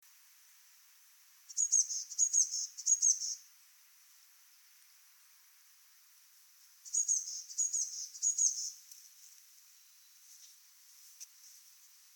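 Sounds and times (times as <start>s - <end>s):
faint hiss: 0.0s - 12.1s
Eurasian blue tit calls, Cyanistes caeruleus: 1.5s - 3.4s, 6.9s - 8.8s.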